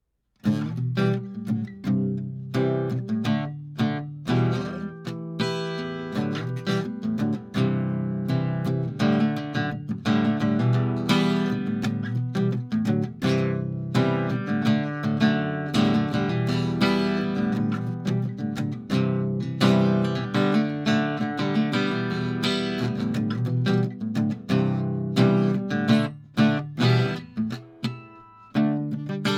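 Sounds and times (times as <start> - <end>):
1933 Gibson L10 archtop guitar harmonic: 0.4 - 29.3.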